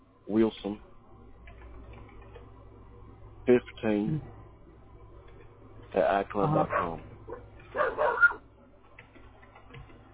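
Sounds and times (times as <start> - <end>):
faint noise: 0.0 - 10.1
speech: 0.3 - 0.9, 3.5 - 4.4, 5.9 - 7.1
Australian Shepherd dogs barking over a phone line: 6.5 - 8.5.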